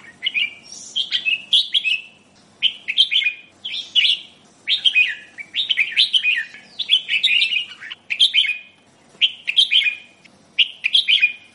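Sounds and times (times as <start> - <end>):
Sooty-headed bulbul song: 0.0 - 11.5.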